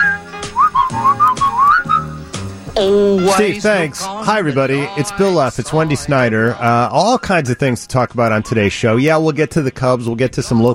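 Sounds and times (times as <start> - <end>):
person whistling a short tune: 0.0 - 2.2
speech: 2.8 - 10.7.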